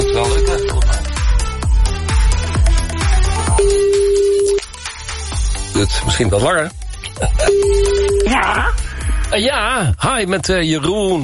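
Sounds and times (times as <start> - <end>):
ringback tone as a phone call is placed: 0.0 - 1.0, 3.5 - 4.6, 7.4 - 8.3
pulsing rhythmic beat: 0.0 - 11.2
speech: 5.8 - 11.2.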